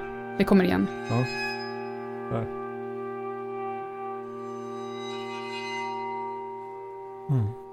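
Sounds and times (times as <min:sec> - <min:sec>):
large iron plates bowed into a ringing drone: 0:00.0 - 0:07.7
speech: 0:00.4 - 0:01.5, 0:02.3 - 0:02.6
person saying a short word: 0:07.3 - 0:07.6.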